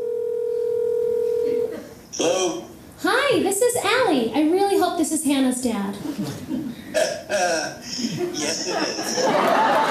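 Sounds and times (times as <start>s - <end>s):
telephone ringing tone: 0.0s - 1.7s
speech: 3.2s - 9.9s
laughter: 6.2s - 9.9s.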